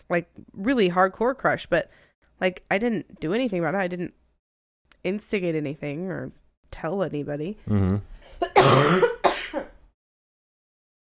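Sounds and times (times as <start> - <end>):
speech: 0.1 - 4.2, 5.0 - 9.7
person coughing: 7.7 - 9.8.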